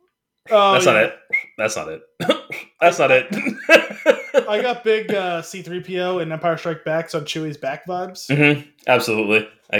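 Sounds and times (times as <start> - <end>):
speech: 0.5 - 9.7
person attempting to whistle: 0.7 - 1.6
laughter: 3.1 - 5.6.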